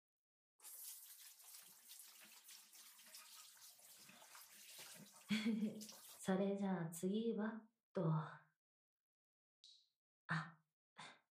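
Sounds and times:
water pouring to rinse a person's face during washing: 0.6s - 6.3s
speech: 5.3s - 8.4s.

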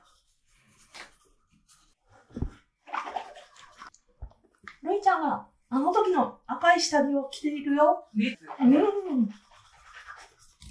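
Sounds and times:
water sloshing and splashing in a bath: 0.0s - 5.8s, 8.3s - 10.6s
speech: 5.1s - 9.5s.

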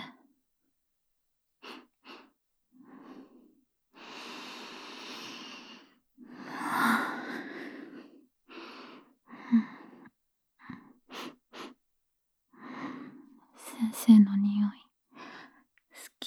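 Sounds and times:
deep breathing: 1.6s - 10.1s
speech: 13.9s - 14.8s.

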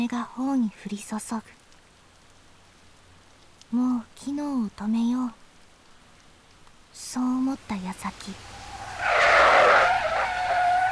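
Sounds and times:
speech: 0.0s - 1.6s, 3.7s - 5.4s, 7.0s - 9.2s
tires of a black heavy car screeching as it brakes in the rain: 8.4s - 10.9s.

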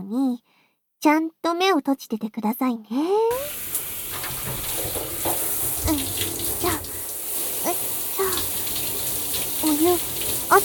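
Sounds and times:
speech: 0.1s - 3.8s, 5.9s - 6.8s, 9.8s - 10.6s
water rinsing shampoo out of hair: 3.4s - 10.6s.

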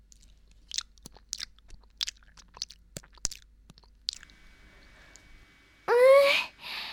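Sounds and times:
teeth chewing and biting raw icefish: 0.0s - 4.4s.

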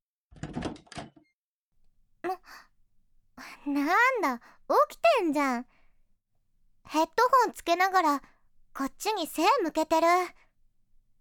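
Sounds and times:
bedroom door creaking open: 0.3s - 1.3s
bedroom door rattling clack as it settles: 0.4s - 1.2s
speech: 2.2s - 2.7s, 3.4s - 5.7s, 6.8s - 10.4s.

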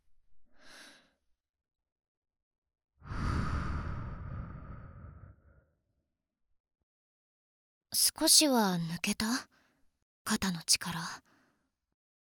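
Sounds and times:
long drawn-out exhale during a guided relaxation exercise: 3.1s - 5.6s
soft inhale during a guided relaxation exercise: 3.1s - 5.6s
speech: 8.0s - 9.5s, 10.3s - 11.3s.

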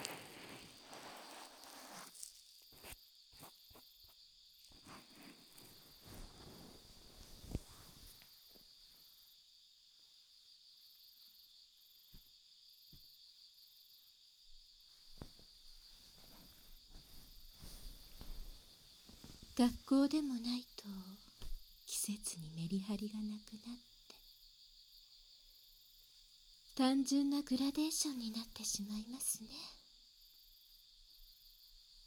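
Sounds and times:
crickets chirping: 0.0s - 32.0s
speech: 19.6s - 21.1s, 22.1s - 23.9s, 26.8s - 29.8s.

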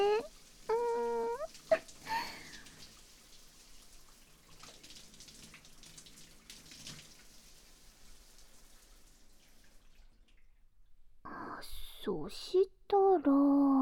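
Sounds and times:
tap water splashing while rinsing a person's body: 0.0s - 10.8s
speech: 12.2s - 13.7s.

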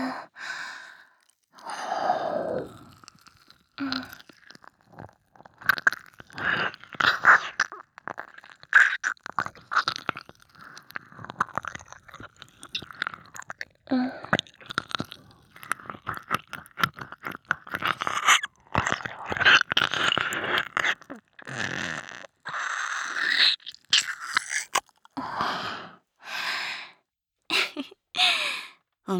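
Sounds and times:
breathy sighs: 0.0s - 3.1s, 25.2s - 27.0s, 28.2s - 28.8s
wet ASMR mouth sounds nibbling and licking an ear: 2.7s - 25.2s.

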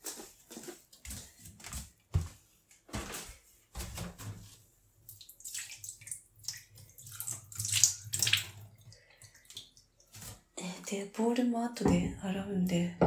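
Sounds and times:
water pouring down a bathroom drain: 5.2s - 10.4s
speech: 10.9s - 13.0s
hollow bumps and clunks: 11.8s - 13.0s.

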